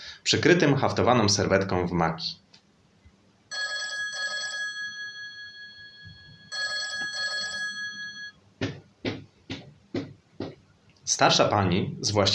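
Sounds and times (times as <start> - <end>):
speech: 0.3 - 2.4, 11.2 - 12.3
old telephone bell ringing loudly: 3.5 - 8.4
sharp knocks or thuds: 8.6 - 10.6.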